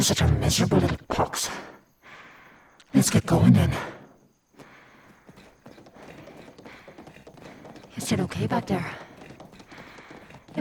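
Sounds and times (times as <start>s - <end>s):
speech: 0.0s - 1.7s, 2.9s - 4.0s, 8.0s - 9.0s
horse hooves clip-clopping while ridden in a video game: 5.0s - 10.5s.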